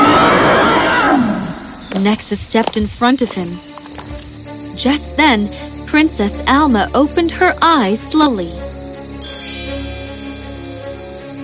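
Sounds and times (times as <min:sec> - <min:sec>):
dragon roaring in a cave: 0:00.0 - 0:01.6
speech: 0:02.0 - 0:03.7, 0:04.8 - 0:09.4.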